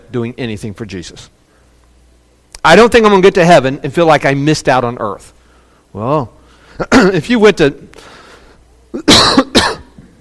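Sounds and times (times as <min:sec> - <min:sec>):
speech: 0:00.1 - 0:01.4, 0:02.6 - 0:08.2, 0:08.9 - 0:09.5
man with bad sinuses coughing: 0:06.7 - 0:07.2, 0:08.9 - 0:10.1.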